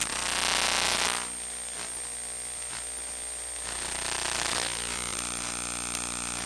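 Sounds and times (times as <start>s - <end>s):
ambient electric hum and buzz: 0.0s - 6.4s.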